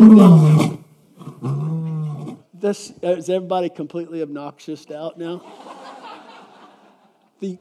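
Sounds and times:
deep powerful lion roar: 0.0 - 2.4
speech: 0.1 - 0.5, 2.6 - 5.8, 7.4 - 7.5
laughter: 5.4 - 7.3.

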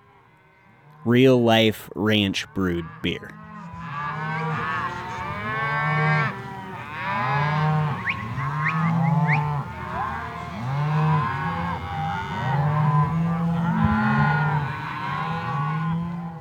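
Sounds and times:
speech: 1.0 - 3.4
herd of cattle mooing while being moved along a road: 2.1 - 16.3.

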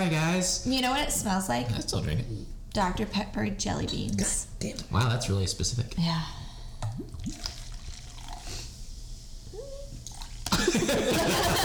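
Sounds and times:
speech: 0.0 - 6.4
drink glugging and trickling from a bottle into a glass: 6.9 - 8.6
laughter: 10.5 - 11.6.

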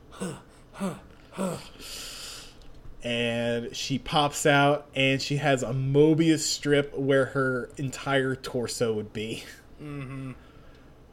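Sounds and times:
person imitating heavy breathing: 0.0 - 2.5, 9.8 - 10.5
speech: 0.2 - 1.8, 3.0 - 10.5.

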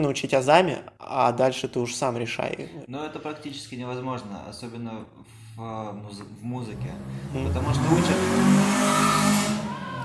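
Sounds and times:
speech: 0.0 - 9.5
motorcycle engine revving loudly as it passes: 6.9 - 10.0.

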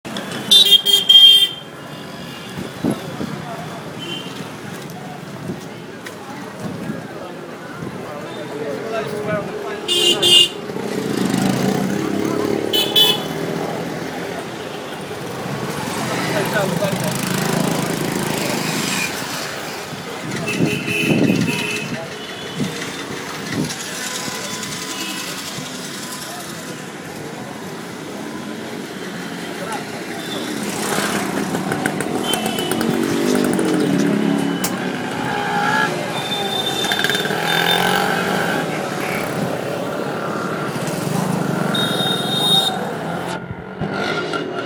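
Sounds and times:
passing traffic in Pune: 0.0 - 44.6
voices: 0.1 - 44.1
rickshaw engine low rumble in Pune: 1.6 - 44.6.

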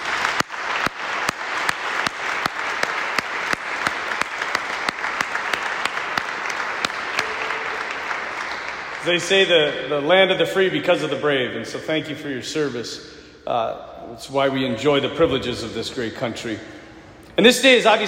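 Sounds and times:
audience applauding veterans who have stood up: 0.0 - 9.7
speech: 9.1 - 16.8, 17.4 - 18.0.

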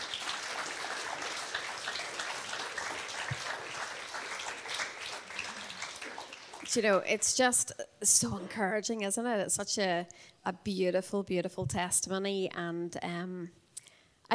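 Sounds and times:
audience applause: 0.0 - 6.8
speech: 6.8 - 13.6.

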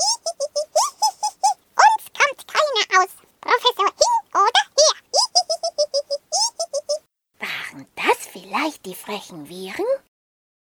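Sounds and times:
high squeaky cartoonish chattering: 0.0 - 7.0
speech: 8.9 - 10.1.

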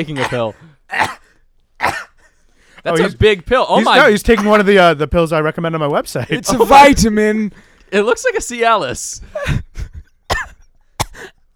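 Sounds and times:
speech: 0.0 - 1.2, 2.8 - 9.6
harsh dry hacking coughs: 0.0 - 2.3, 3.8 - 4.6, 9.4 - 11.5.

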